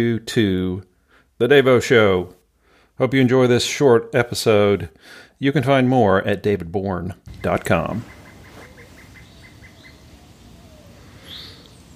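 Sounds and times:
speech: 0.0s - 2.4s, 3.0s - 8.2s
bird chirp: 7.3s - 11.9s
pileated woodpecker calling in a backyard: 7.3s - 11.9s.

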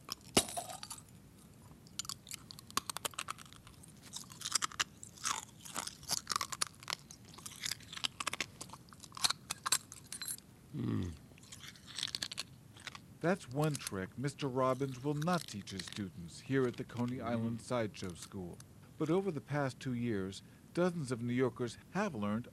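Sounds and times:
person biting and chewing a glass light bulb: 0.0s - 10.4s, 11.0s - 14.0s, 14.6s - 17.4s
speech: 13.2s - 22.5s.

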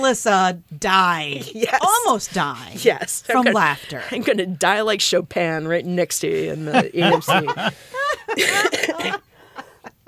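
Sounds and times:
speech: 0.0s - 9.2s
laughter: 6.4s - 9.9s
person coughing: 8.4s - 9.2s.

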